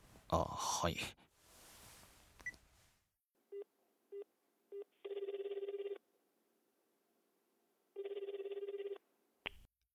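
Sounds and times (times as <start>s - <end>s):
speech: 0.3s - 1.2s
long buzzing rings on a phone line: 5.0s - 6.0s, 8.0s - 9.0s.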